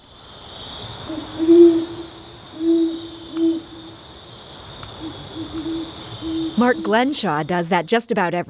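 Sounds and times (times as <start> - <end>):
steady high insect drone at night outdoors: 0.0 - 7.9
great horned owl hooting: 1.1 - 4.0, 5.0 - 7.3
speech: 6.6 - 8.4.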